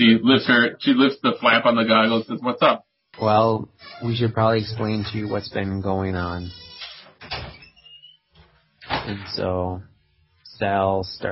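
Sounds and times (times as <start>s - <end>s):
speech: 0.0s - 6.7s, 9.0s - 9.9s, 10.6s - 11.3s
faint thin door creak: 3.2s - 9.4s.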